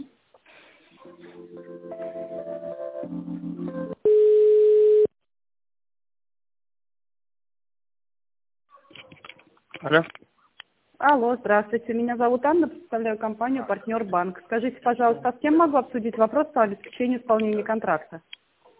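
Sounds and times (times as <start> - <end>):
telephone line tones during a call transfer: 4.0 - 5.1
speech: 9.8 - 10.2, 11.0 - 18.4.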